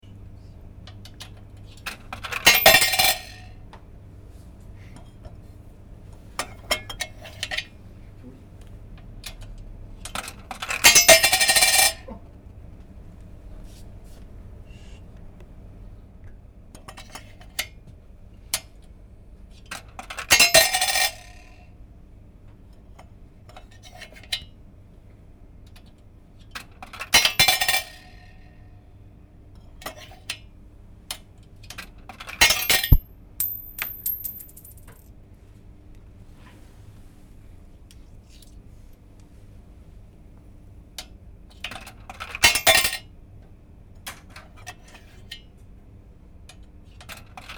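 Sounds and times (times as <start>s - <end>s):
coins in a laundromat vending machine: 1.9s - 3.6s, 10.6s - 12.1s, 20.3s - 21.6s, 27.0s - 28.4s, 32.2s - 35.1s, 42.1s - 43.0s.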